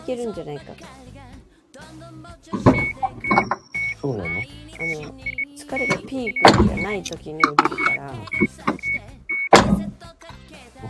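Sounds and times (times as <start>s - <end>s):
speech: 0.1s - 1.2s, 1.9s - 9.2s
car electronic warning beep: 2.6s - 9.9s.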